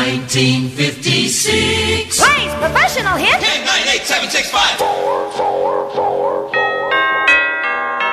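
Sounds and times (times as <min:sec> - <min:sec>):
speech: 0:00.1 - 0:06.7
doorbell-style ding-dong chime: 0:06.6 - 0:08.1.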